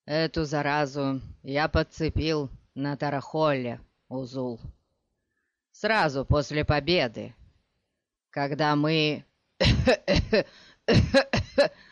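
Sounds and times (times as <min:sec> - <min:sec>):
speech: 0:00.1 - 0:04.8, 0:05.8 - 0:07.4, 0:08.4 - 0:11.8
sick man coughing convulsively and choking: 0:09.6 - 0:11.8.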